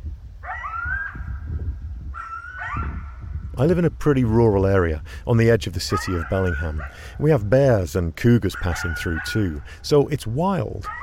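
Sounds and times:
low steady rumble of noise: 0.0 - 11.0
coyotes from a pack yipping and whimpering near Bellingham, Washington State: 0.4 - 3.4, 5.9 - 7.2, 8.5 - 9.7, 10.8 - 11.0
speech: 3.6 - 11.0.

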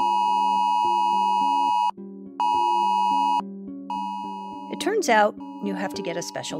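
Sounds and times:
emergency alert tone on a phone: 0.0 - 5.0
speech: 4.8 - 6.5.

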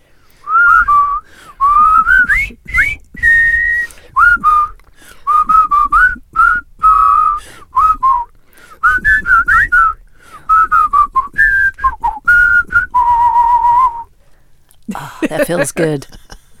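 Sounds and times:
group of people whistling a tune: 0.4 - 14.1
speech: 15.5 - 16.2.

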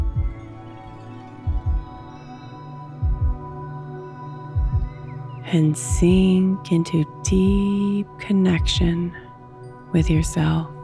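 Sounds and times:
slow deep heartbeat thumping in lub-dub pairs: 0.0 - 0.5, 1.4 - 2.1, 3.0 - 3.6, 4.6 - 5.1, 5.8 - 6.6, 7.2 - 9.2, 10.0 - 10.6
speech: 5.5 - 9.2, 9.9 - 10.8.

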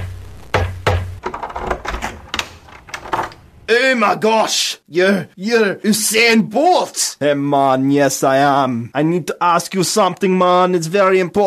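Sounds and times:
sharp loud knocks and lighter raps on a door: 0.5 - 1.3
speech: 3.7 - 11.4.

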